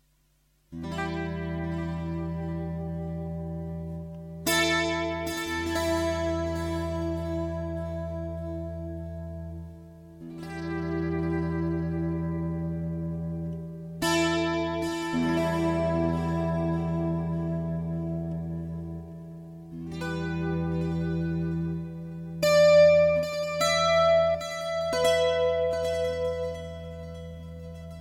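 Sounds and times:
guitar motif played with volume pedal: 0:00.0 - 0:27.9.

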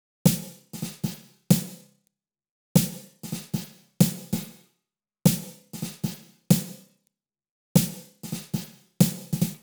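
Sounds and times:
snare drum beat: 0:00.3 - 0:01.8, 0:02.8 - 0:04.5, 0:05.3 - 0:06.8, 0:07.8 - 0:09.6.

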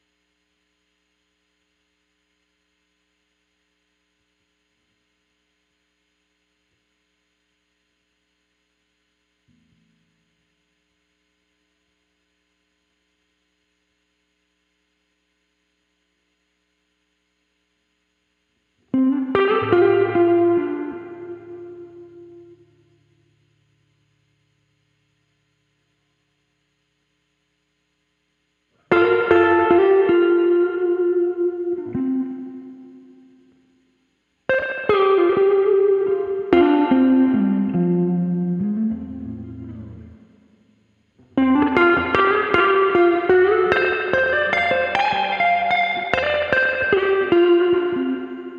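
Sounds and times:
surf guitar: 0:18.8 - 0:24.2, 0:28.8 - 0:48.5.

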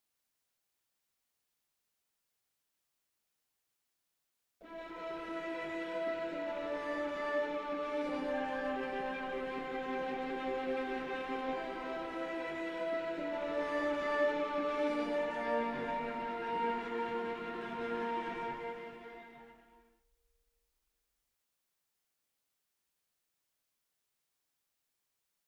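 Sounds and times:
twinkling orchestra: 0:04.7 - 0:19.4.

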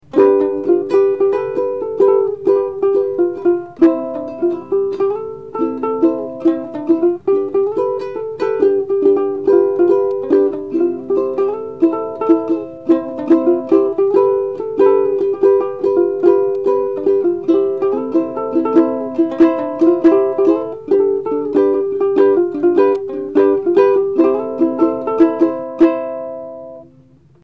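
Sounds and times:
blended ukulele samples: 0:00.0 - 0:27.4.

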